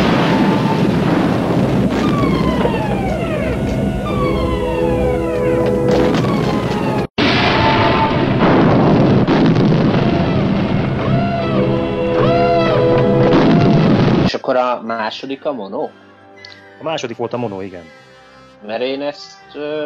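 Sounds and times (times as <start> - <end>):
wailing corridor alarm siren: 0.0 - 8.5, 9.7 - 14.3
heavy explosions and rumbling blasts: 0.0 - 14.4
speech: 15.4 - 16.0, 16.8 - 19.8.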